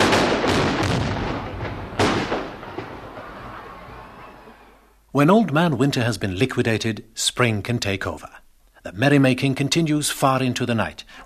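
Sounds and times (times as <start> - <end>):
firecrackers exploding: 0.0 - 4.6
speech: 5.2 - 11.2.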